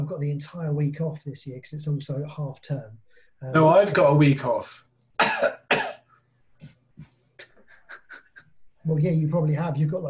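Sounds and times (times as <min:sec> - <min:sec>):
speech: 0:00.1 - 0:05.6, 0:08.8 - 0:10.0
short breathy coughs: 0:05.2 - 0:06.1.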